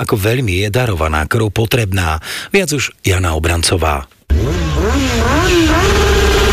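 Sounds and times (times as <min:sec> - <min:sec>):
speech: 0:00.0 - 0:06.2
motorcycle engine revving: 0:04.3 - 0:06.5.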